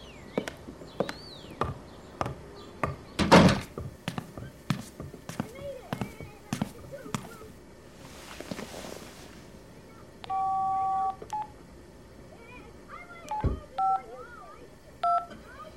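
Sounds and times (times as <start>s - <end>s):
low murky hum: 0.0s - 15.7s
telephone keypad tones dialing on speakerphone: 10.2s - 11.5s, 13.3s - 14.0s, 15.0s - 15.7s.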